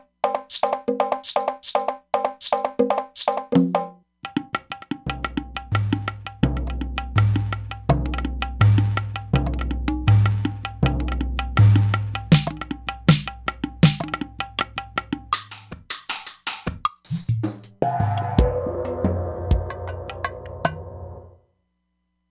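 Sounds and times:
E-mu Proteus-3 synthesizer factory percussion patches: 0:00.4 - 0:03.5, 0:04.3 - 0:21.2.

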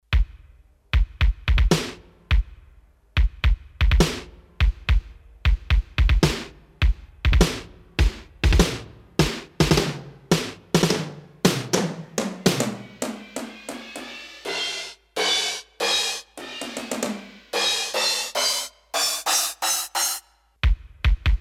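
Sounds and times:
drum kit: 0:00.0 - 0:21.4.

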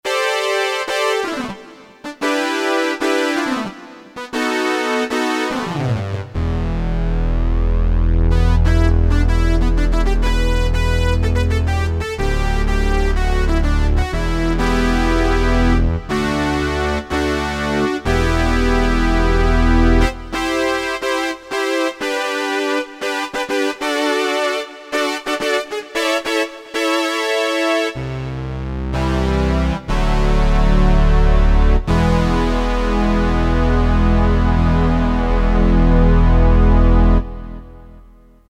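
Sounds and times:
Moog and Korg DSS-1 DWGS synthesizer: 0:00.0 - 0:38.4.

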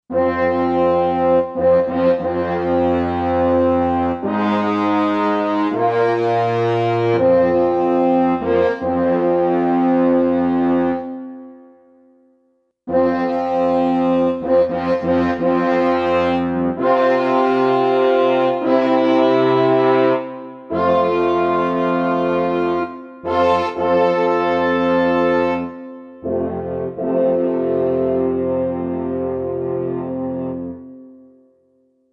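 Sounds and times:
synthesized French horn section from a Roland SC-880 factory patch: 0:00.1 - 0:11.5, 0:12.9 - 0:30.9.

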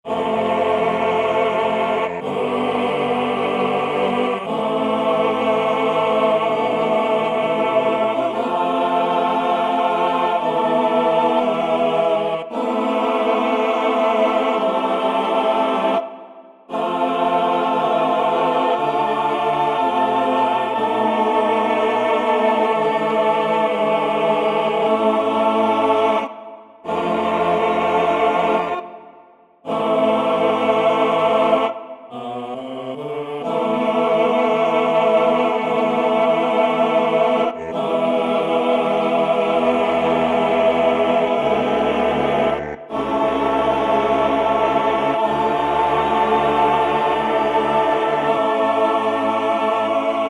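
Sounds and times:
Mellotron male choir synthesizer: 0:00.0 - 0:50.2.

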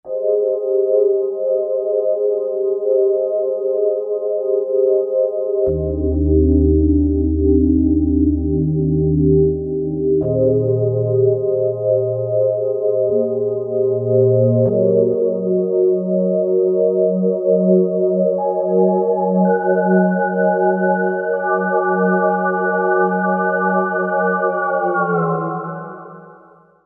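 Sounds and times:
fat sine synth pad: 0:00.1 - 0:26.6.

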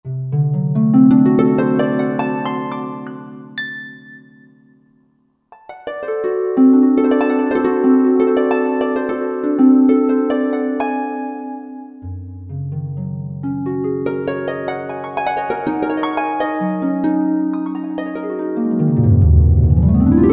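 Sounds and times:
harp sound on Roland JV-2080 synthesizer: 0:00.0 - 0:04.9, 0:05.6 - 0:20.3.

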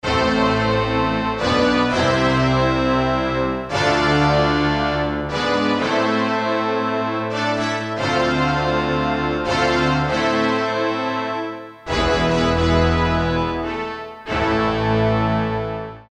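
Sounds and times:
Korg DSS-1 synthesizer brass and strings: 0:00.0 - 0:16.0.

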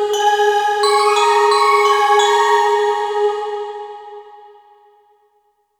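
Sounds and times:
Vox gamelan: 0:00.1 - 0:04.1.

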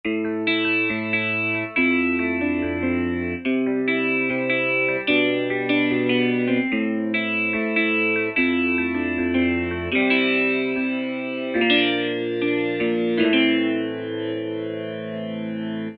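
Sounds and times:
guitar on E-mu Morpheus synthesizer: 0:00.0 - 0:15.9.

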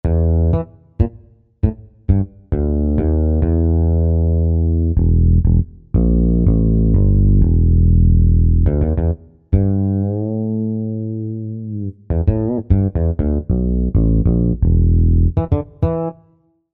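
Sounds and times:
bass: 0:00.0 - 0:16.2.

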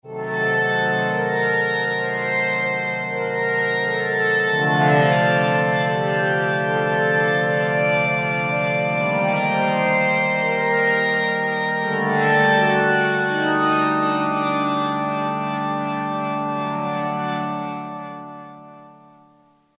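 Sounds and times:
Roland M-DC1 sync pad: 0:00.1 - 0:19.3.

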